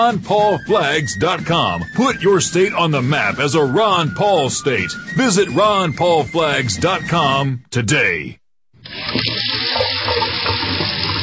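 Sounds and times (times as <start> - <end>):
speech: 0.0 - 8.4
water gushing from a faucet and splashing into a sink: 8.8 - 11.2.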